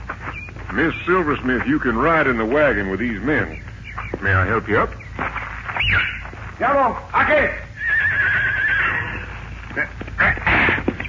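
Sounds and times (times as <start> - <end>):
shuffling movement: 0.0 - 11.0
voices murmuring: 0.0 - 11.0
speech: 0.7 - 5.4, 6.0 - 7.7
horse neighing: 7.7 - 11.0.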